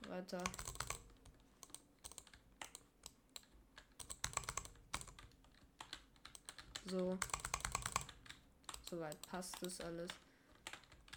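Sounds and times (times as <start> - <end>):
fast computer keyboard and mouse clicking: 0.0 - 11.1
speech: 0.1 - 0.7, 6.8 - 7.4, 8.9 - 10.2.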